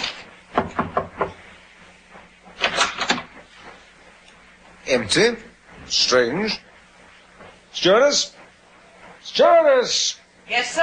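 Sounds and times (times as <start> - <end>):
knocking on a cabin door: 0.5 - 1.4
speech: 4.9 - 6.7, 7.8 - 8.4, 9.2 - 10.8.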